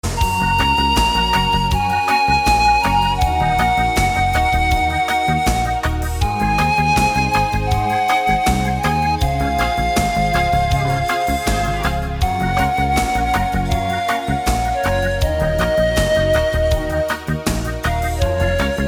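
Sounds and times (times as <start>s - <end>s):
ocarina reggae music: 0.0s - 18.8s.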